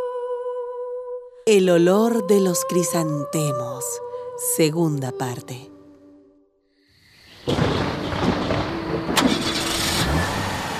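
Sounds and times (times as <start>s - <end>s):
speech: 1.5s - 5.8s
car engine cranking, starting and rumbling with a rev: 7.5s - 10.7s.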